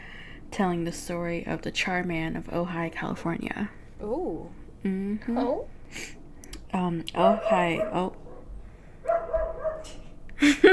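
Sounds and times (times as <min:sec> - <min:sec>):
speech: 0:00.6 - 0:08.2
male dog barking: 0:07.2 - 0:10.0
male dog whining: 0:09.1 - 0:10.0.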